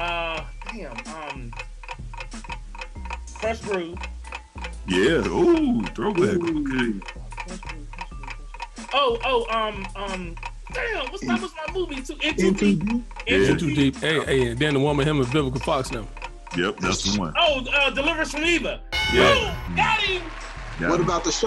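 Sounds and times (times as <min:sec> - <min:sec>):
game timer clock ticking during a trivia game: 0:00.0 - 0:19.7
speech: 0:03.4 - 0:04.2, 0:04.8 - 0:07.2, 0:09.0 - 0:21.4
brief tonal sound: 0:19.0 - 0:19.8.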